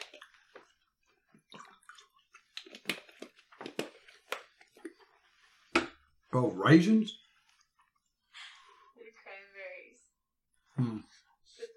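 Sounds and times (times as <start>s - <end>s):
person gulping and swallowing water: 0.0s - 5.2s
speech: 6.3s - 7.2s.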